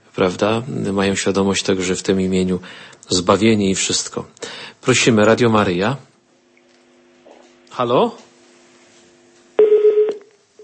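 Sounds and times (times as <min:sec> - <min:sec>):
speech: 0:00.2 - 0:06.1, 0:07.8 - 0:08.2
telephone tones from a call-in line where the call fails to connect: 0:09.6 - 0:10.6.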